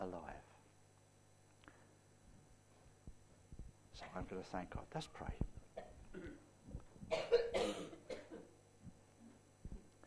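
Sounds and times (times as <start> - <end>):
speech: 0.0 - 0.5, 4.0 - 5.5
steady low hum: 0.5 - 10.0
person coughing harshly: 5.8 - 6.4, 7.1 - 8.6
rough throat clearing: 5.8 - 6.4, 7.1 - 8.5.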